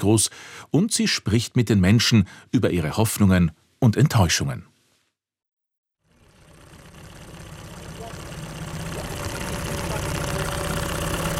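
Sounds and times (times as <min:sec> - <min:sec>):
speech: 0:00.0 - 0:04.7
wooden tourist boat engine droning on Lake Skadar in Montenegro: 0:06.1 - 0:11.3.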